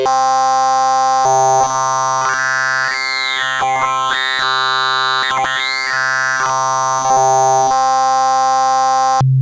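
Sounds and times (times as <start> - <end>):
synthesizer table waveform sweep: 0.2 - 9.2.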